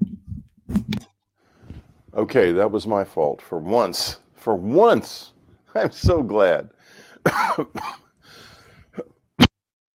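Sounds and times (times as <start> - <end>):
speech: 2.2 - 8.0
person coughing in harsh bursts: 7.2 - 8.1.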